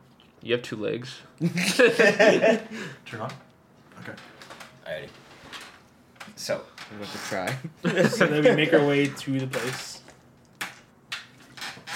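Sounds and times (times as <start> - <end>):
speech: 0.4 - 5.2, 6.4 - 10.0
laughter: 1.4 - 2.9, 7.6 - 9.1
chair creaking and squeaking: 3.9 - 7.8, 8.8 - 11.9.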